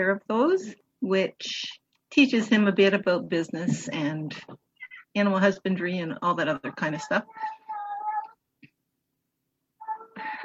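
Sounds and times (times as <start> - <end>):
speech: 0.0 - 4.6, 5.2 - 7.6
male cat meowing: 7.2 - 8.4.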